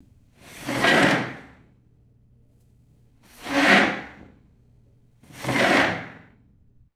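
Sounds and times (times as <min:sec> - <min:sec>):
sharp chair scrapes on hard floor: 0:00.4 - 0:01.5, 0:03.4 - 0:04.2, 0:05.3 - 0:06.2.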